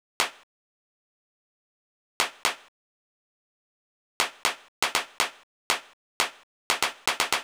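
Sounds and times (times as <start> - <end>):
drum machine clap: 4.2 - 7.4.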